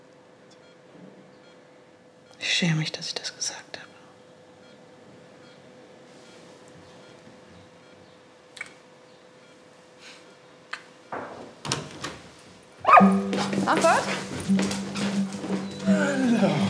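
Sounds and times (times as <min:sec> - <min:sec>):
speech: 0:02.5 - 0:03.7
dog barking in yips and woofs: 0:12.8 - 0:14.0
steady tonal hum: 0:13.0 - 0:16.6.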